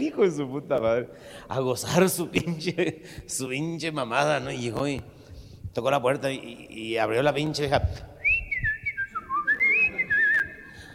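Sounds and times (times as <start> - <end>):
speech: 0.0 - 5.2, 5.8 - 8.1
person whistling a tune imitating a woman rearranging furniture: 8.2 - 10.9.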